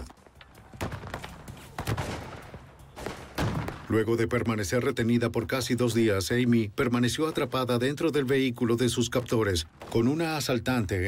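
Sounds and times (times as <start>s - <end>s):
gunfire exchanged back and forth: 0.8s - 4.0s
speech: 3.9s - 11.0s.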